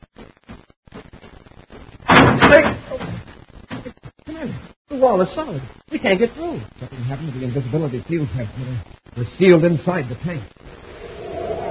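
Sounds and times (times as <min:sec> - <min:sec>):
heavy door thudding shut: 0:02.1 - 0:02.8
speech: 0:02.5 - 0:02.8, 0:05.0 - 0:10.6.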